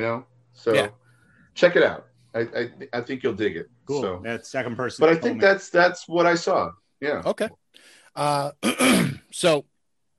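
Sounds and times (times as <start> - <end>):
speech: 0.0 - 1.0, 1.6 - 9.7
voiced throat clearing with a short hum: 8.2 - 9.3.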